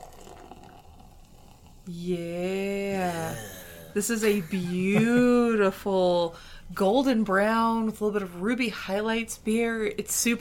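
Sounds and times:
Munich Dunkel dark lager poured into a glass: 0.0s - 1.9s
speech: 1.9s - 2.6s, 4.0s - 10.3s.

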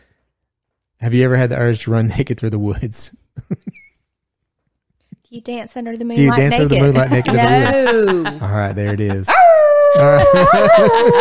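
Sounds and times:
speech: 1.0s - 3.8s, 5.3s - 11.1s
laughter: 3.4s - 3.9s, 6.2s - 11.1s
person imitating a wolf howl: 9.3s - 11.1s.

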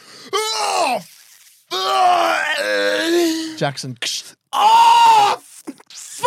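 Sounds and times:
person screaming in pain as acted stabbing victim: 0.3s - 1.1s, 1.7s - 3.6s, 4.6s - 6.2s
speech: 0.9s - 2.8s, 3.6s - 4.1s.

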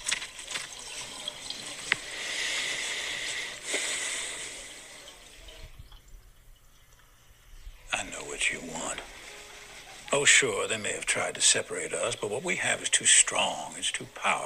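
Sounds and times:
running water from hand washing: 0.0s - 14.4s
speech: 10.2s - 14.4s.

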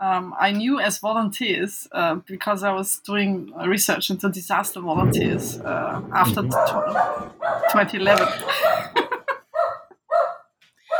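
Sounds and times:
speech: 0.0s - 8.6s
sudden thunderstorm: 5.0s - 9.1s
dog barking: 6.6s - 7.8s, 9.5s - 10.9s
laughter: 8.0s - 9.5s.

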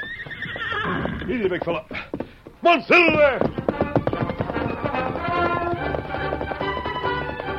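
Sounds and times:
stallion hooves clip-clopping at a gallop: 0.0s - 7.5s
speech: 1.3s - 3.6s
loud stirring orchestral music: 3.8s - 7.5s.

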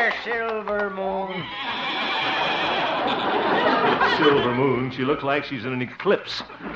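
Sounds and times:
speech: 0.2s - 2.7s, 4.2s - 6.7s
horse neighing: 1.3s - 3.2s
laughter: 1.3s - 6.7s.

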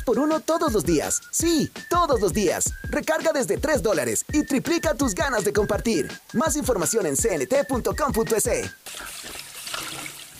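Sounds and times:
speech: 0.1s - 9.4s
water running from a kitchen tap: 8.8s - 10.3s.

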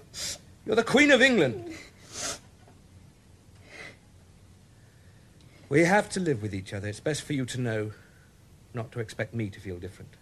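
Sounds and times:
speech: 0.7s - 1.8s, 5.7s - 8.0s, 8.7s - 10.1s
nose blowing into a handkerchief: 2.1s - 2.5s.

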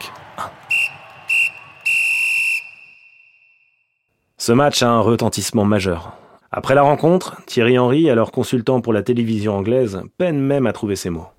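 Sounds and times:
referee's final whistle blasts: 0.6s - 4.0s
speech: 4.5s - 11.3s.

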